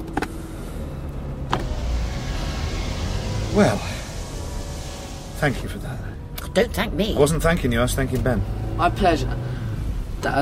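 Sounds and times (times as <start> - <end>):
car engine rumbling as the car pulls away: 0.0 - 10.4
faint mechanical whirr: 0.1 - 8.3
speech: 3.6 - 3.9, 5.4 - 9.6, 10.2 - 10.4.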